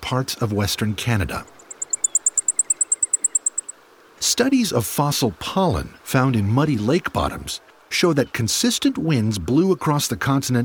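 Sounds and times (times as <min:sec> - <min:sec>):
soft background hiss: 0:00.0 - 0:10.6
speech: 0:00.1 - 0:01.6, 0:04.4 - 0:10.6
Blackpoll Warbler singing high thin ticking notes: 0:01.4 - 0:03.8.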